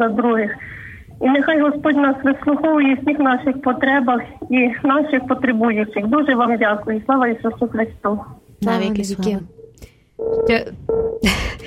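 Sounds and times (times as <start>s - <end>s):
speech: 0.0s - 9.6s, 10.2s - 11.6s
electronic telephone line tones from a failed call to a radio phone line: 9.6s - 11.2s.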